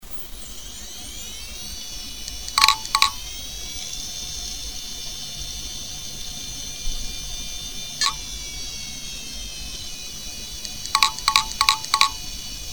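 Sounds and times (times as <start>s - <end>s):
QUANTUM Plus AS hard drive knocking from faulty magnetic head block: 2.4s - 3.2s, 8.0s - 8.2s, 10.6s - 12.4s.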